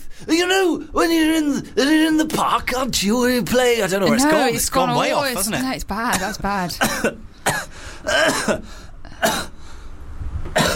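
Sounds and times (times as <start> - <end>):
speech: 0.2 - 9.5
person clearing throat: 6.1 - 9.6, 10.6 - 10.7
person coughing: 6.1 - 9.6, 10.6 - 10.7.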